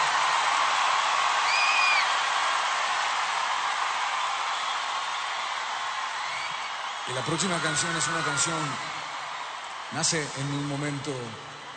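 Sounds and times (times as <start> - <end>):
large audience applauding: 0.0 - 11.7
speech: 7.1 - 9.0, 9.9 - 11.6.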